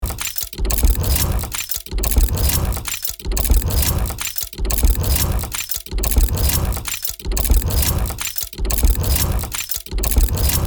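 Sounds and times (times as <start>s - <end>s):
steampunk automated machinery running: 0.0s - 10.6s.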